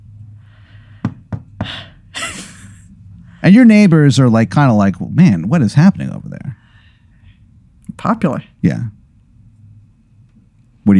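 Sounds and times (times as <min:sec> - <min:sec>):
low hum: 0:00.0 - 0:10.9
sharp knocks on a door: 0:01.0 - 0:01.7
speech: 0:03.4 - 0:06.5, 0:08.0 - 0:09.0.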